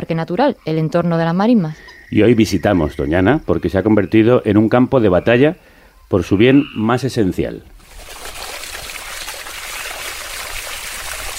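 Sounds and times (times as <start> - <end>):
speech: 0.1 - 8.2
flowing water: 7.8 - 11.3.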